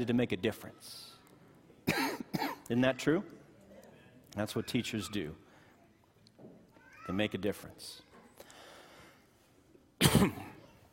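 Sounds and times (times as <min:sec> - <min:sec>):
speech: 0:00.0 - 0:01.2, 0:01.9 - 0:03.4, 0:04.4 - 0:05.4, 0:07.1 - 0:08.0, 0:10.0 - 0:10.5
person coughing: 0:01.8 - 0:02.7, 0:10.0 - 0:10.6.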